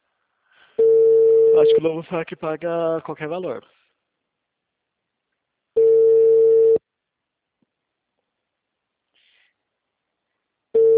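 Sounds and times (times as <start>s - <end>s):
telephone ringback tone while a call is placed: 0.8s - 1.8s, 5.8s - 6.8s, 10.8s - 10.9s
speech: 1.6s - 3.8s.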